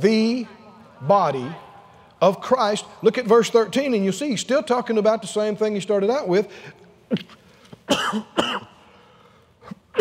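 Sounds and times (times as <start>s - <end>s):
speech: 0.0s - 8.7s
harsh coughs into a microphone: 7.1s - 8.8s, 9.7s - 9.9s.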